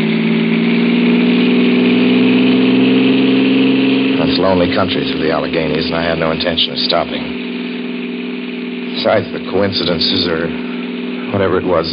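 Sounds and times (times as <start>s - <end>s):
car engine revving as driver accelerates: 0.0s - 11.9s
speech: 4.5s - 7.4s, 9.0s - 10.6s, 11.3s - 11.9s.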